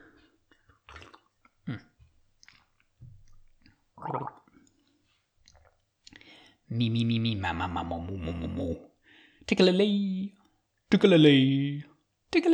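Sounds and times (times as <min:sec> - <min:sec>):
person sipping a drink with slurping and swallowing: 0:00.5 - 0:06.5
small mouth clicks: 0:00.7 - 0:04.5
speech: 0:06.8 - 0:08.9, 0:09.5 - 0:10.3, 0:10.9 - 0:12.5.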